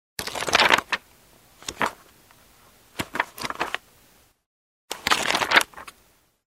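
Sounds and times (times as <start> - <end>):
pages flipping fast: 0.2 - 1.0, 1.6 - 2.0, 3.0 - 3.8, 4.9 - 6.0.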